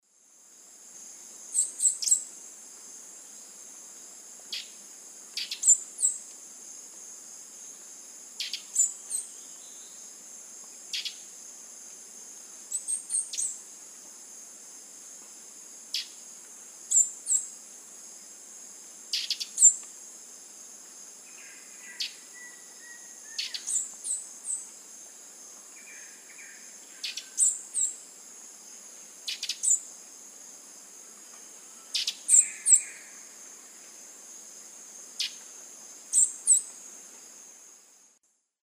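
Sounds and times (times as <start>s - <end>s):
Tachyphonus surinamus song in South American eastern lowlands: 1.6s - 2.3s, 4.5s - 4.8s, 5.4s - 6.2s, 8.4s - 10.1s, 10.9s - 11.2s, 12.7s - 13.6s, 16.9s - 17.5s, 19.1s - 19.8s, 21.3s - 24.6s, 25.7s - 28.0s, 29.3s - 29.8s, 31.7s - 33.2s, 36.1s - 36.7s.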